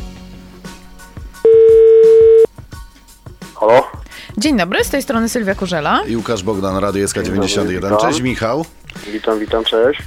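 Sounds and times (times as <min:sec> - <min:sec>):
telephone line tone while a call is being placed: 0:01.4 - 0:02.5
speech: 0:03.6 - 0:10.0.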